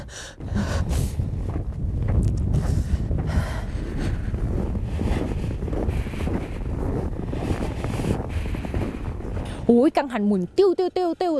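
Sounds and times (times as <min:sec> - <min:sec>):
strong cold wind blowing off a glacier: 0:00.0 - 0:11.3
speech: 0:09.7 - 0:11.3.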